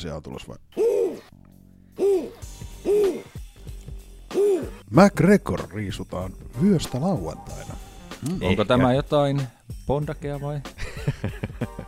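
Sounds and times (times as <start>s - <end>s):
speech: 0.0s - 1.4s, 4.9s - 11.4s
owl hooting: 0.8s - 1.3s, 2.0s - 3.6s, 4.3s - 4.8s
laughter: 10.8s - 11.8s.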